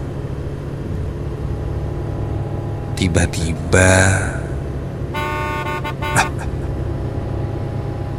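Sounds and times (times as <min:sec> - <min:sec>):
road and engine rumble: 0:00.0 - 0:08.1
speech: 0:03.0 - 0:04.4
car horn honking: 0:05.1 - 0:06.6
laughter: 0:06.1 - 0:06.7.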